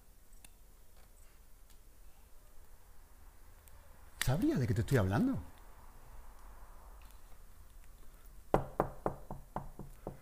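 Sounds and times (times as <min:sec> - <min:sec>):
speech: 0:04.2 - 0:05.5
sharp firm knocks on a door: 0:08.5 - 0:10.2.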